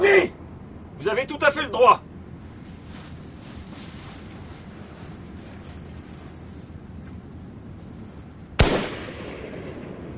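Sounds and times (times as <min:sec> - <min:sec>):
hiss: 0:00.0 - 0:10.1
speech: 0:01.0 - 0:02.1
pistol shot fired in a duel: 0:08.6 - 0:10.1.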